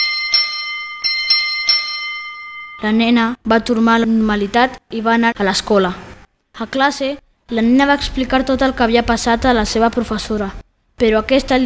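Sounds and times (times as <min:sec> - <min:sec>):
school bell ringing: 0:00.0 - 0:03.2
speech: 0:02.8 - 0:06.0, 0:06.6 - 0:11.6.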